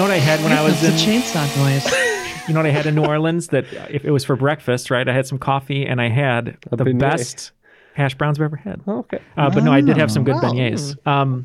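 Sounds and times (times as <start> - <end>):
chainsaw revving: 0.0 - 3.1
laughter: 0.1 - 4.5, 9.4 - 10.9
speech: 0.2 - 11.4.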